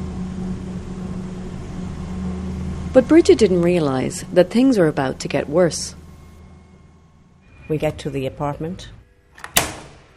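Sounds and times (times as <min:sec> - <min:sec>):
low engine hum inside a moving car in Cairo: 0:00.0 - 0:09.2
speech: 0:02.9 - 0:06.0, 0:07.7 - 0:09.0.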